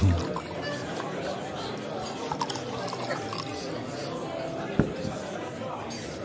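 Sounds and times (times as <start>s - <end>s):
wine glugging into glasses: 0.0s - 3.6s
low murmur of voices: 0.0s - 6.2s.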